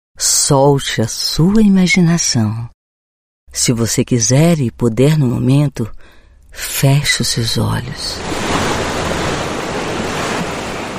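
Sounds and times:
speech: 0.2s - 2.8s, 3.5s - 8.5s
ocean surf washing onto a beach: 8.0s - 10.9s.

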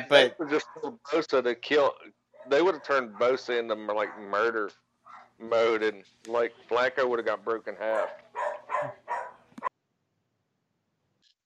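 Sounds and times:
speech: 0.0s - 4.8s, 5.4s - 8.2s
dog barking and yipping: 0.3s - 1.0s, 2.4s - 5.4s, 7.8s - 9.7s.

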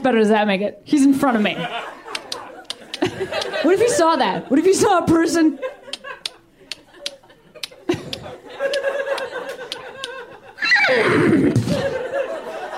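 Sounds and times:
speech: 0.0s - 2.0s, 3.2s - 5.8s
laughter: 1.3s - 12.7s
vocal clicking and snorting: 2.1s - 3.5s, 5.9s - 8.3s
person imitating horse whinny: 10.6s - 11.7s.

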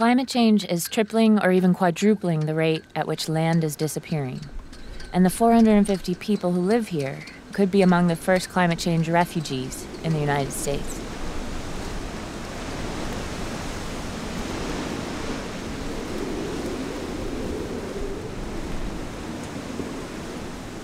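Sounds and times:
speech: 0.0s - 11.0s
storm wind howling through the town on Tangier Island: 4.5s - 20.8s.

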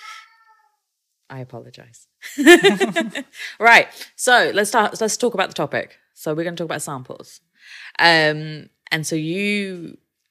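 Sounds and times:
cat meowing: 0.0s - 0.8s
speech: 1.3s - 10.2s
laughter: 2.3s - 3.4s.

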